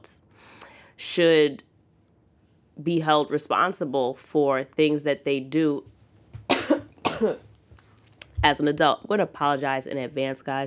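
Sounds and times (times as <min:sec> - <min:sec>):
speech: 0:01.2 - 0:01.7, 0:02.8 - 0:05.9, 0:07.2 - 0:07.5, 0:08.4 - 0:10.6
harsh raspy coughs: 0:06.5 - 0:07.5.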